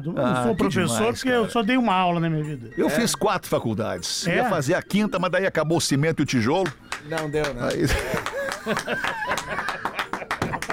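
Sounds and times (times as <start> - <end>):
speech: 0.0 - 9.8
hand clapping: 6.6 - 10.7
people laughing: 7.7 - 10.7.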